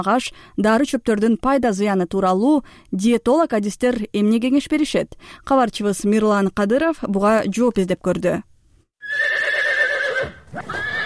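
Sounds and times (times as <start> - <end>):
speech: 0.0 - 8.5
horse neighing in the At-Bashy district: 9.0 - 11.0.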